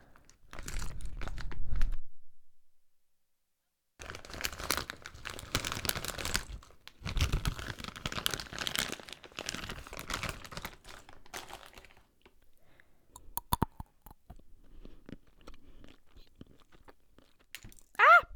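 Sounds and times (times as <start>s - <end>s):
crinkling: 0.1s - 1.9s, 4.0s - 12.4s
crunchy snacks being eaten ASMR-style: 4.0s - 12.4s, 13.2s - 18.1s.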